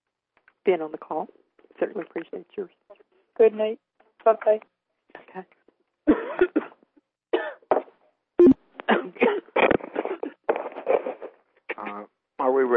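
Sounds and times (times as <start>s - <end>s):
speech: 0.7s - 4.7s, 5.3s - 6.5s
person coughing with harsh throaty hacks: 6.1s - 6.8s, 7.4s - 7.7s, 8.4s - 10.4s.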